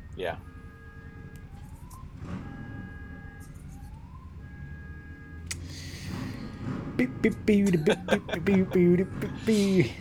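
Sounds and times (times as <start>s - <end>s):
car alarm wailing outdoors: 0.0s - 6.2s, 7.0s - 9.5s
low rumble of street noise: 0.0s - 10.0s
speech: 0.2s - 0.5s, 7.0s - 10.0s
laughter: 7.4s - 10.0s.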